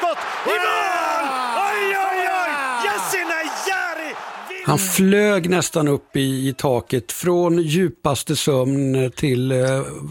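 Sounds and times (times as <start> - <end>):
man yelling and cheering after a goal in a football match: 0.0 - 5.3
speech: 0.4 - 0.9, 4.7 - 10.0.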